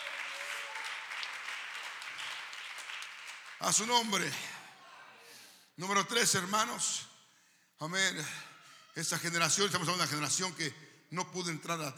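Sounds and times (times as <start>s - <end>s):
crowd applauding at a church service: 0.0s - 4.4s
speech: 3.6s - 4.6s, 5.8s - 7.1s, 7.8s - 11.9s.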